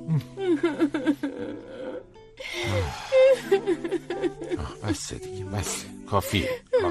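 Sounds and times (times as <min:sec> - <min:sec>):
person sobbing and whimpering: 0:00.0 - 0:05.0, 0:05.6 - 0:06.8
speech: 0:00.1 - 0:01.0, 0:04.9 - 0:06.8
person wailing: 0:02.6 - 0:03.9.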